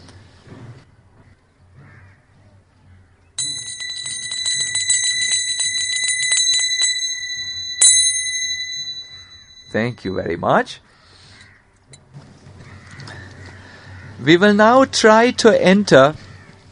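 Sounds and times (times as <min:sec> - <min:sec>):
bright high bell ringing rapidly: 0:03.4 - 0:10.6
speech: 0:09.8 - 0:10.9, 0:14.2 - 0:16.2.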